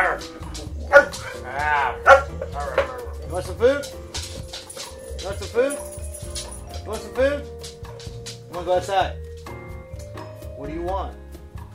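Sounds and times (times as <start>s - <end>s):
dog barking: 0.0s - 3.2s
speech: 0.2s - 0.7s, 3.4s - 4.0s, 8.7s - 9.2s, 10.8s - 11.2s.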